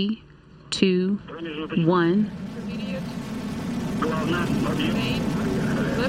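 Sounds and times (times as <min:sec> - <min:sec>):
rocket lifting off with rumbling roar: 0:01.2 - 0:06.0.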